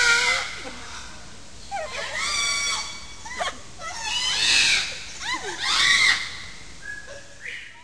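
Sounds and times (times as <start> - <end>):
parrots screeching: 0.0 - 0.6, 1.7 - 6.5.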